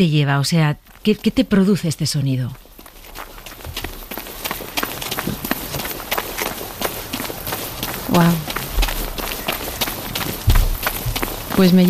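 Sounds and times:
speech: 0.0s - 2.7s, 8.2s - 8.4s, 11.6s - 11.8s
footsteps of a person jogging: 2.5s - 11.8s.

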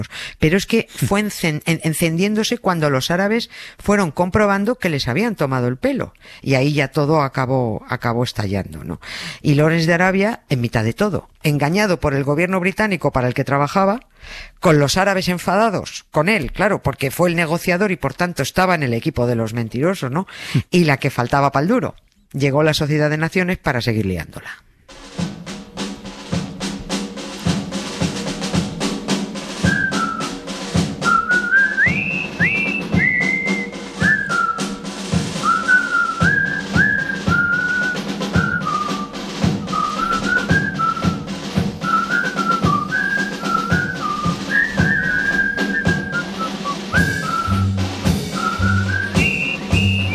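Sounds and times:
speech: 0.0s - 25.3s
steady thumping march beat and band accompaniment: 24.9s - 50.1s
jaunty military march film theme whistled: 29.6s - 50.1s.

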